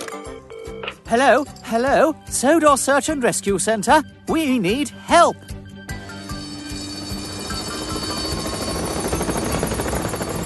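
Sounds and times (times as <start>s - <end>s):
speech: 1.1s - 5.6s
helicopter rotor roar: 5.9s - 10.4s.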